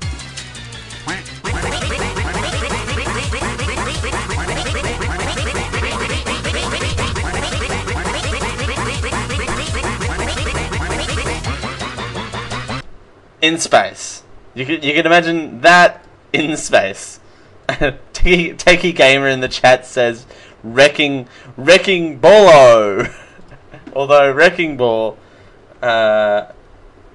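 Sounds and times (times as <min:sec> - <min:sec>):
loud distorted duck quack sound effects: 0:01.0 - 0:12.8
speech: 0:13.4 - 0:23.2, 0:23.9 - 0:25.2, 0:25.8 - 0:26.6.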